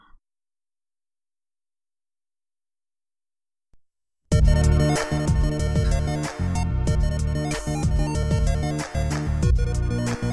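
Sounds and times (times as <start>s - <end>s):
8-bit chiptune video game music with square-wave melodies: 4.4s - 10.3s.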